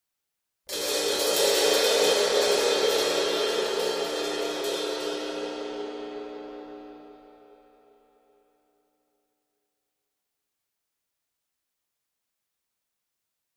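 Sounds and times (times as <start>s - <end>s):
large drum kit cymbal trill: 0.7s - 7.8s.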